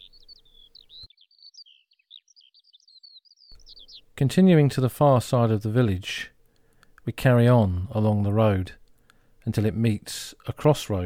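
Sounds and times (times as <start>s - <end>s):
bird warbling and chirping among trees of leafy glades in France: 0.0s - 2.6s, 3.5s - 4.1s
speech: 4.2s - 6.3s, 7.1s - 8.8s, 9.5s - 11.0s.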